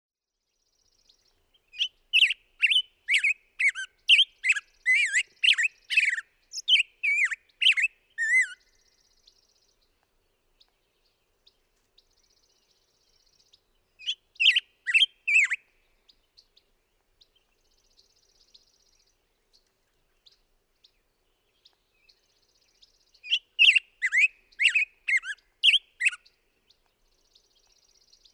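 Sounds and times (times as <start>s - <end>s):
Black-headed Grosbeak calling: 1.7s - 8.8s, 14.0s - 15.6s, 23.2s - 26.3s.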